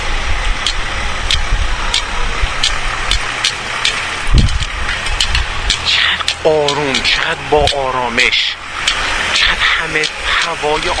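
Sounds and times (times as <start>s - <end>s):
cars idling at an intersection by a bridge: 0.0s - 10.9s
traffic hiss: 0.0s - 10.9s
speech: 6.4s - 8.6s, 9.8s - 10.9s.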